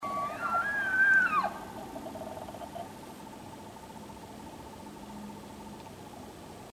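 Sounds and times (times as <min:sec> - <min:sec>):
curious elk short bugle: 0:00.0 - 0:03.0.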